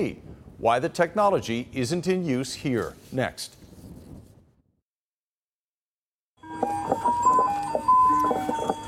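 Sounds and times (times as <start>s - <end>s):
speech: 0.0s - 3.6s
tinkly electronic ice cream truck jingle: 6.4s - 8.8s.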